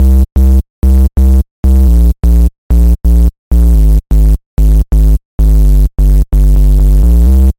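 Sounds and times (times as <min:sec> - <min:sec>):
noisy sub bass: 0:00.0 - 0:07.5.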